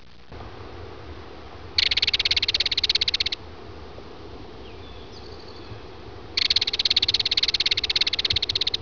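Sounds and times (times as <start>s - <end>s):
Belted Kingfisher calling: 1.8s - 3.4s, 6.4s - 8.8s.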